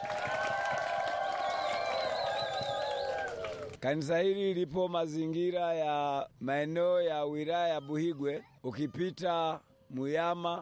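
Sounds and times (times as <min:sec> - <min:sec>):
church congregation applause: 0:00.0 - 0:03.9
speech: 0:03.8 - 0:10.6.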